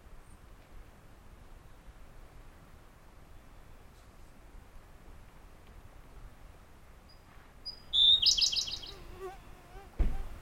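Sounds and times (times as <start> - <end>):
Siberian blue robin Larvivora cyane singing: 7.1 - 9.6
brief thump: 10.0 - 10.4.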